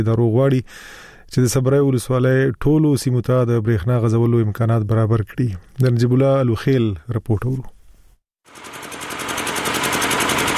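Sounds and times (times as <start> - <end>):
speech: 0.0 - 7.8
old diesel electricity generator running loudly in a market: 8.5 - 10.5.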